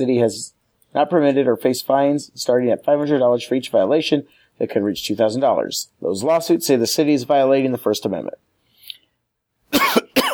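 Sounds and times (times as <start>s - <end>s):
speech: 0.0s - 8.5s
person coughing: 9.7s - 10.3s.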